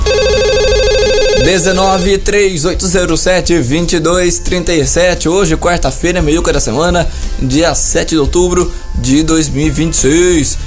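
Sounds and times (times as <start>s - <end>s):
old landline telephone ringing with an electronic trill: 0.0s - 2.1s
speech: 1.4s - 10.6s.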